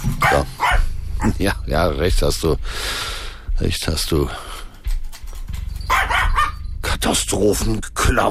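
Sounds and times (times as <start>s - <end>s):
steady low rumble: 0.1s - 8.3s
young dog barking: 0.2s - 0.9s, 5.9s - 6.6s
speech: 1.2s - 4.5s, 7.1s - 8.3s.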